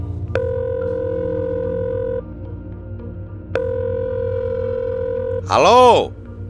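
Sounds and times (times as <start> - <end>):
telephone ringback tone as a call is placed: 0.4 - 2.2, 3.7 - 6.0
speech: 5.5 - 6.2.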